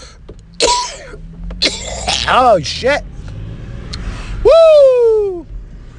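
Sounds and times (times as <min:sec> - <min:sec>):
person coughing harshly after a deep hit: 0:00.6 - 0:02.3
speech: 0:02.3 - 0:03.1, 0:04.4 - 0:05.4.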